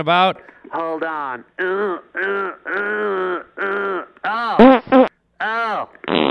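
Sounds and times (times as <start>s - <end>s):
speech: 0.0s - 6.2s
fart noises through a phone line: 1.6s - 5.1s, 6.0s - 6.2s.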